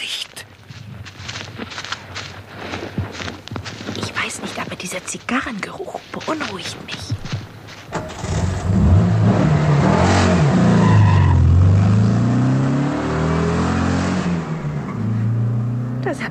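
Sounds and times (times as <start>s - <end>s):
speech: 4.9s - 7.1s
car accelerating and driving past: 8.0s - 16.1s.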